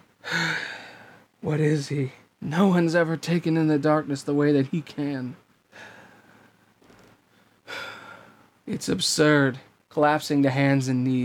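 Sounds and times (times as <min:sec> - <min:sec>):
harsh heavy breathing from a person hunched over: 0:00.2 - 0:01.4, 0:05.7 - 0:06.7, 0:07.3 - 0:08.6
speech: 0:01.4 - 0:05.9, 0:08.7 - 0:11.2.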